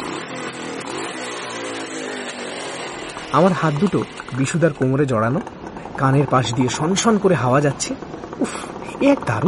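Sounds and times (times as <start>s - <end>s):
motorbike with rider and passenger pulling away with loud roar: 0.0s - 9.4s
speech: 3.3s - 9.4s.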